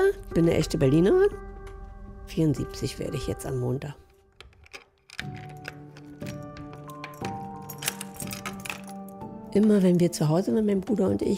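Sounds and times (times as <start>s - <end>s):
speech: 0.1s - 1.4s, 2.3s - 4.0s, 5.2s - 5.5s, 9.6s - 11.3s
door lock clunking as it is worked: 4.3s - 9.2s
keys jangling: 4.4s - 9.3s.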